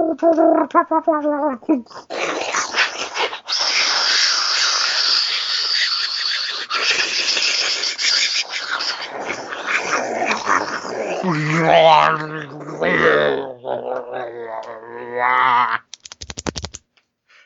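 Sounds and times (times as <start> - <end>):
voice growling and snarling imitating an animal: 0.0 - 15.9
speech: 0.1 - 2.7, 11.3 - 15.8
rapid keyboard-like clicking: 15.9 - 16.8.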